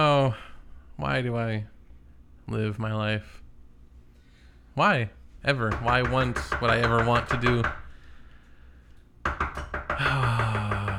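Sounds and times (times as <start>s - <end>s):
speech: 0.2s - 1.8s, 2.5s - 3.4s, 4.8s - 7.8s
firm knocking on a door: 5.7s - 7.9s, 9.2s - 10.9s.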